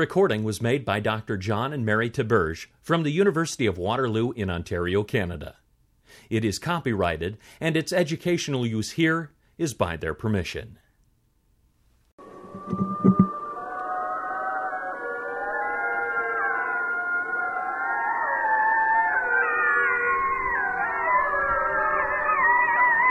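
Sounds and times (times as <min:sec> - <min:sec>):
speech: 0:00.0 - 0:10.8
Mexican wolf chorus of overlapping howls: 0:13.3 - 0:23.0.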